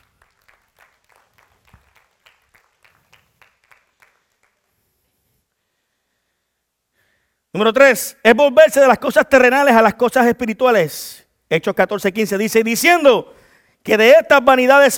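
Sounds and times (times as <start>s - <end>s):
audience clapping in unified rhythm: 0.0s - 5.3s
speech: 7.6s - 14.9s.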